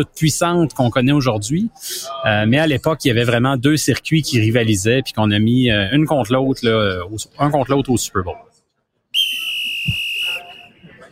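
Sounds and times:
speech: 0:00.0 - 0:08.5
low noise: 0:00.0 - 0:11.0
whistle blast: 0:09.1 - 0:11.0.

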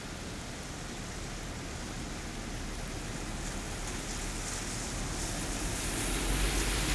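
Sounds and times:
cars passing on a wet road on a rainy day: 0:00.2 - 0:06.9
vehicle approaching on a wet road: 0:04.3 - 0:06.9.

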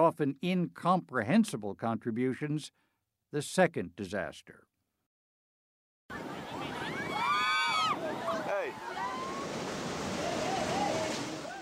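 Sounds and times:
speech: 0:00.1 - 0:04.7
surf breaking on a beach in Indonesia piled with used clothing: 0:06.1 - 0:11.6.

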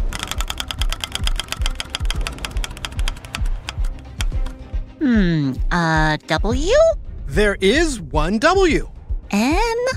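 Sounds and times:
spinning wheel in a word-guessing game ratcheting: 0:00.0 - 0:04.6
speech: 0:05.0 - 0:09.6.

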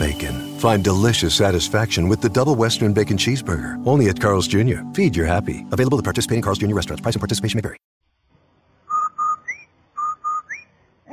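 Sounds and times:
whistled advertising jingle: 0:00.0 - 0:02.9, 0:08.9 - 0:10.8
speech: 0:00.6 - 0:07.9.

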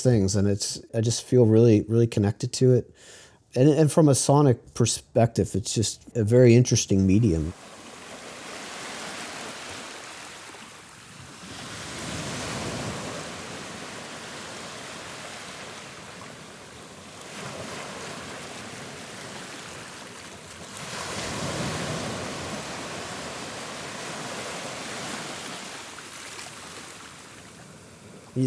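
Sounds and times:
speech: 0:00.0 - 0:07.7
heavy ocean surf with big waves breaking: 0:07.5 - 0:28.4.

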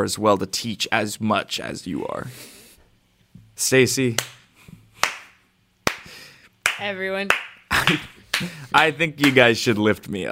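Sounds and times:
speech: 0:00.0 - 0:02.6, 0:03.6 - 0:04.4, 0:06.8 - 0:10.3
small group clapping: 0:04.2 - 0:09.6.

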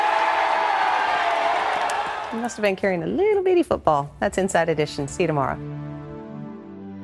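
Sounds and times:
large stadium audience cheering at a football game: 0:00.0 - 0:02.6
speech: 0:02.4 - 0:05.9.

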